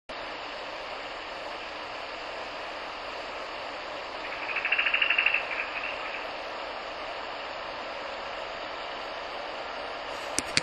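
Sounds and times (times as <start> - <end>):
steady hiss: 0.1 - 10.6
pale thrush alarm call: 4.1 - 6.4
sharp clicks: 10.4 - 10.6.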